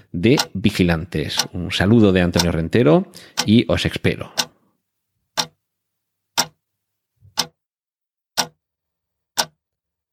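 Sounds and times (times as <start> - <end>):
speech: 0.1 - 4.4
clock ticking toward midnight: 0.1 - 4.7, 5.3 - 5.7, 6.3 - 7.6, 8.4 - 8.6, 9.4 - 9.6.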